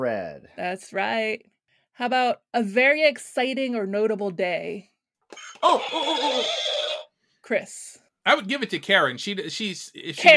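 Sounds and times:
speech: 0:00.0 - 0:06.8, 0:07.5 - 0:10.3
horse whinny: 0:05.4 - 0:07.1.

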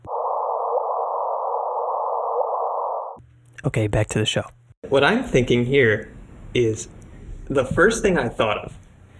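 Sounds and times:
sonified gravitational-wave signal of two black holes merging: 0:00.0 - 0:03.2
speech: 0:03.6 - 0:08.8.

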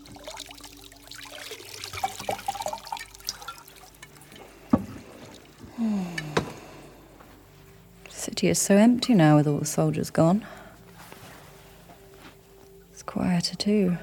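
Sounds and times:
unguents pouring and trickling into a hot bath: 0:00.0 - 0:05.9
speech: 0:08.4 - 0:10.6, 0:13.6 - 0:14.0.

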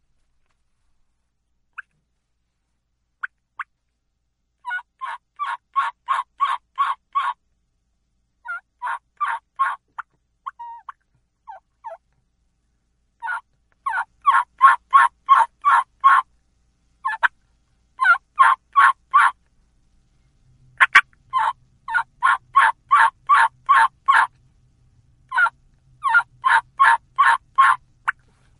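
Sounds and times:
turkey hen yelp made on a mouth call: 0:04.6 - 0:07.4, 0:08.4 - 0:09.8, 0:10.5 - 0:12.0, 0:13.2 - 0:16.3, 0:17.0 - 0:17.3, 0:18.0 - 0:19.4, 0:20.8 - 0:24.3, 0:25.3 - 0:28.2.

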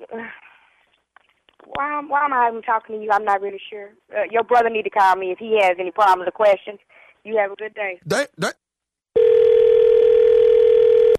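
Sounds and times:
speech: 0:01.8 - 0:08.6
telephone dial tone after hang-up: 0:09.2 - 0:11.1.

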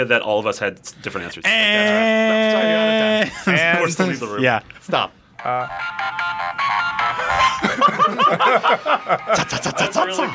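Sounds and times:
speech: 0:00.0 - 0:06.3, 0:07.7 - 0:10.3
laughter: 0:01.8 - 0:04.2, 0:07.0 - 0:10.3
phone countdown timer alarm ringing at the end of a quiz countdown: 0:05.4 - 0:09.5.

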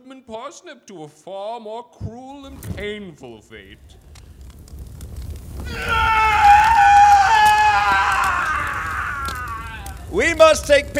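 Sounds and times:
speech: 0:00.2 - 0:04.0, 0:05.7 - 0:06.4, 0:10.1 - 0:10.9
faint low rumble: 0:03.5 - 0:10.9
man screaming: 0:05.7 - 0:10.2.

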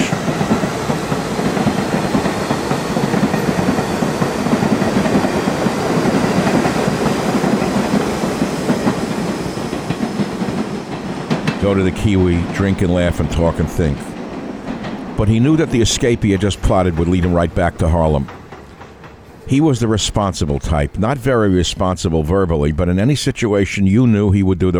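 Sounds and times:
subway train clattering along rails: 0:00.0 - 0:21.9
speech: 0:11.7 - 0:14.1, 0:15.2 - 0:18.4, 0:19.5 - 0:24.7.

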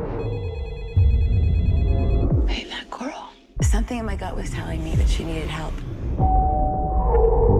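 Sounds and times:
mobile phone ringing with warbling electronic ringtone: 0:00.2 - 0:02.4
speech: 0:03.9 - 0:07.5.

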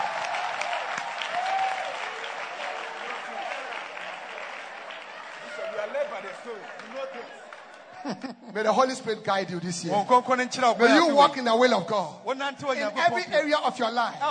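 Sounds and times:
scattered cheers: 0:00.0 - 0:07.9
crowd clapping steadily: 0:00.0 - 0:08.2
laughter: 0:07.7 - 0:09.1
speech: 0:08.1 - 0:14.2.

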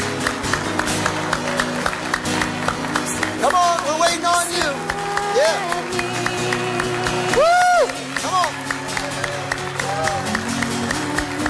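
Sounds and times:
audience clapping hands in a steady rhythm: 0:00.0 - 0:11.4
murmur of voices: 0:00.0 - 0:11.4.

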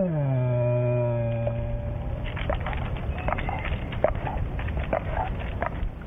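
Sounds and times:
frightened black bear moaning in a tree: 0:00.0 - 0:02.8
irregular crackling and snapping sounds: 0:01.2 - 0:06.0.

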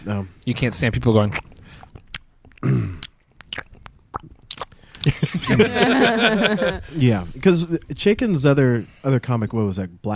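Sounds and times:
speech: 0:00.0 - 0:01.5, 0:05.5 - 0:10.1
voiced mouth noise: 0:01.2 - 0:05.8
wet squishy chewing and smacking into a microphone: 0:01.3 - 0:05.1
laughter: 0:05.0 - 0:07.0.

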